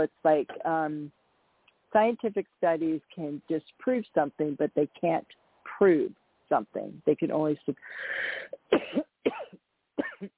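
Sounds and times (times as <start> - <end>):
speech: 0.0 - 1.2, 1.9 - 9.4
person coughing after inhaling a bug: 8.6 - 10.3.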